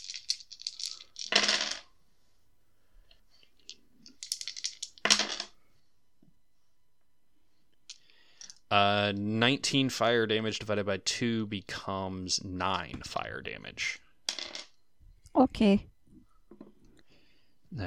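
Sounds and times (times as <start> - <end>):
handful of dice clattering across a hard surface: 0.0 - 1.9, 3.6 - 5.5, 14.3 - 14.8
speech: 8.7 - 14.0, 15.4 - 15.9.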